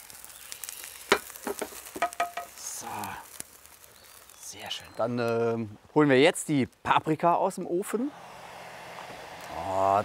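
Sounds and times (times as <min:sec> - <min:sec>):
food sizzling in a pan: 0:00.0 - 0:05.3
speech: 0:04.5 - 0:08.3, 0:09.8 - 0:10.0.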